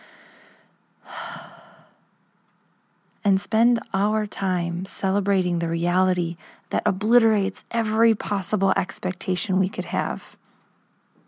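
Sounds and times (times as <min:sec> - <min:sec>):
big calming breath drawn in and let out: 0:00.0 - 0:02.0
speech: 0:03.3 - 0:10.4.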